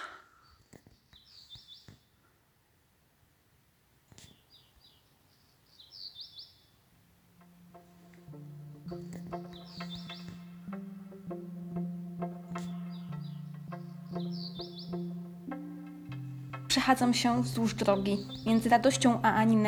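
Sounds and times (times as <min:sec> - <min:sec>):
skylark singing: 0:07.4 - 0:19.6
speech: 0:16.7 - 0:19.6.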